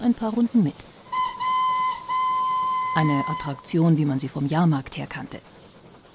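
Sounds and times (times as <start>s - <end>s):
speech: 0.0s - 1.0s, 3.0s - 5.6s
steam locomotive whistle on a circular iron track: 1.1s - 3.7s.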